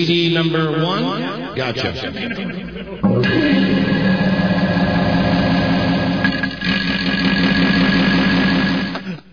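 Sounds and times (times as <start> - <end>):
speech: 0.0 - 4.0
loud fart sound effect drenched in heavy reverb: 3.0 - 9.2.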